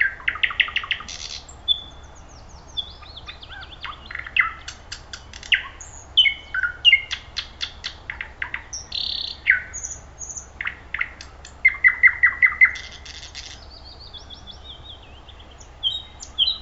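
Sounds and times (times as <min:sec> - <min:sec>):
thrush nightingale song: 0:00.0 - 0:16.5.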